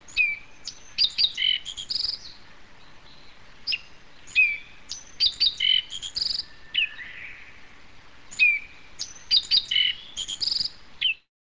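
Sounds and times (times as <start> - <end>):
black-faced bunting singing with high chips and thin buzzy notes: 0.0 - 11.3.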